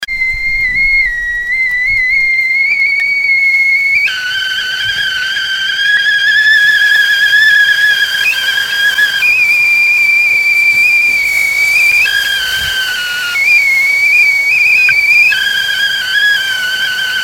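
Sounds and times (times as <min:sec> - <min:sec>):
tea pot whistling: 0:00.0 - 0:17.2.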